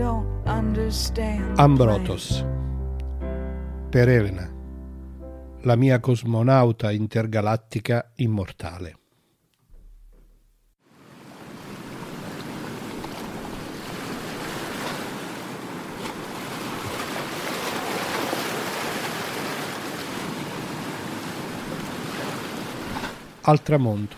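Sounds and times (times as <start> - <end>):
speech: 0.2 - 2.6, 3.9 - 4.6, 5.6 - 9.0, 23.4 - 24.1
sea waves breaking against the coast: 10.8 - 24.1.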